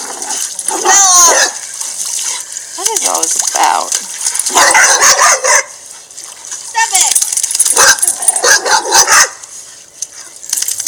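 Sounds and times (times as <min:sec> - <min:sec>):
speech: 0:00.7 - 0:01.6, 0:03.0 - 0:05.7, 0:07.0 - 0:07.2
three dogs barking in a house: 0:00.7 - 0:01.6, 0:04.4 - 0:05.8, 0:07.7 - 0:09.4.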